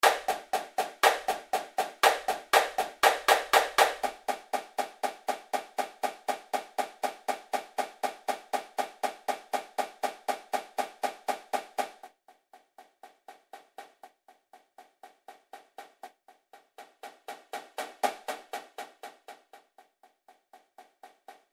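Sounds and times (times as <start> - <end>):
snare drum at 120 bpm: 0.0 - 12.1, 16.8 - 19.6.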